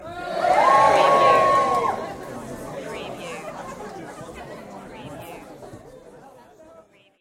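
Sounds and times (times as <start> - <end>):
audience cheering: 0.0 - 2.2.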